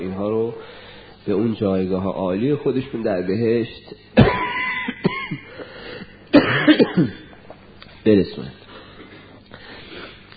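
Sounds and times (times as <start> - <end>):
speech: 0.2 - 5.7, 6.6 - 7.3, 8.0 - 8.6
person coughing: 4.2 - 5.7, 6.3 - 7.4.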